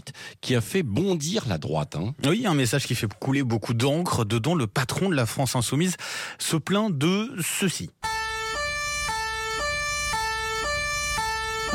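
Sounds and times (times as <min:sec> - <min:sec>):
speech: 0:00.0 - 0:08.1
police car siren two-tone wail: 0:08.0 - 0:11.7.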